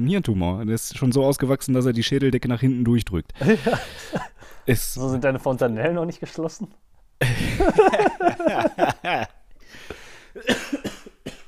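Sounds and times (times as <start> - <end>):
speech: 0.0 - 10.6
person laughing: 3.4 - 4.4, 7.2 - 9.4
harsh voiced coughing fit: 3.4 - 4.6, 7.2 - 11.4.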